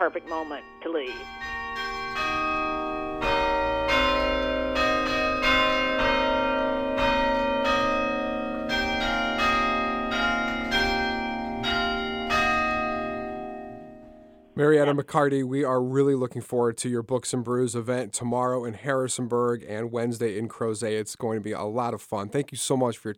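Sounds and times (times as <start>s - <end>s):
speech: 0.0s - 2.4s, 14.6s - 23.1s
church bells pealing a slow melody: 0.0s - 15.0s.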